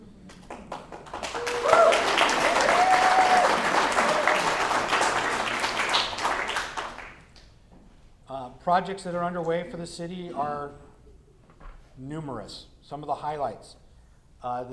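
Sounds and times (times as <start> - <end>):
audience applause: 0.3 - 7.3
audience cheers and whistles: 1.2 - 4.6
speech: 8.7 - 10.9, 12.0 - 13.8, 14.4 - 14.7.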